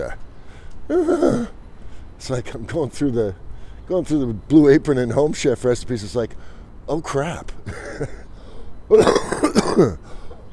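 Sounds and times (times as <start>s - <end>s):
speech: 0.0s - 0.2s, 0.9s - 1.6s, 2.2s - 8.2s, 8.9s - 10.2s
raspy fit of coughing: 0.9s - 1.5s, 8.9s - 10.0s.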